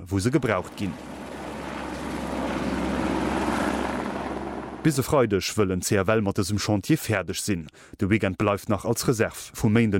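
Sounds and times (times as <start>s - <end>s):
speech: 0.0s - 1.2s, 4.8s - 9.9s
helicopter flying overhead: 0.3s - 5.1s.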